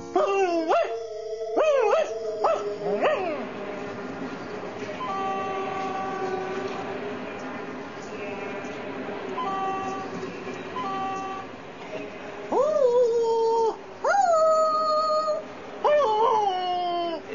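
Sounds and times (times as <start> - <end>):
dog whining: 0.0 - 3.5, 12.5 - 17.2
train running with a droning rumble: 0.0 - 16.6.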